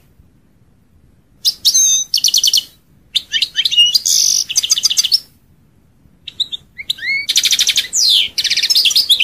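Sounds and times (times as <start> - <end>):
European goldfinch singing: 1.5 - 5.3, 6.3 - 9.1.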